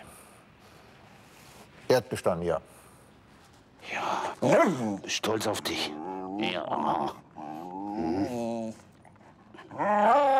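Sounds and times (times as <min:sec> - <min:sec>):
speech: 0:01.9 - 0:02.8, 0:04.1 - 0:07.2, 0:08.0 - 0:08.8
detection dog growling during a search for hidden pyrotechnics: 0:05.7 - 0:10.3.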